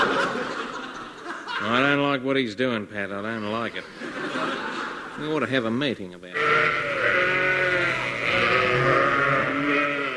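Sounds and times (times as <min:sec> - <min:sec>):
laughter: 0:00.0 - 0:02.1, 0:03.5 - 0:05.4
speech: 0:01.6 - 0:06.9
several sheep bleating: 0:06.3 - 0:10.1.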